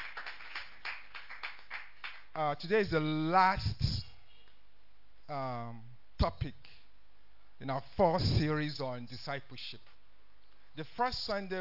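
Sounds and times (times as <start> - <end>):
crowd applauding for a choir: 0.0 - 2.3
speech: 2.4 - 4.1, 5.3 - 6.7, 7.6 - 9.9, 10.8 - 11.6.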